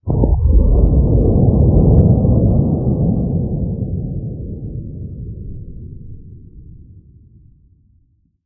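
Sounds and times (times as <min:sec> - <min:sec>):
ship explosion: 0:00.0 - 0:06.4.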